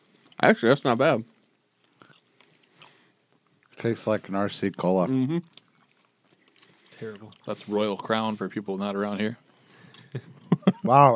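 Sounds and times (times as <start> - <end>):
chewing a cola-flavored chewy candy: 0.0 - 7.8, 9.4 - 10.5
speech: 0.4 - 1.3, 3.8 - 5.6, 7.0 - 9.4, 10.1 - 10.3, 10.9 - 11.1.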